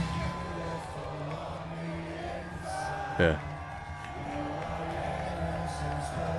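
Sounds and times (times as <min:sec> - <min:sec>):
large crowd at a wrestling show on a cruise singing along: 0:00.0 - 0:06.3
speech: 0:03.2 - 0:03.5.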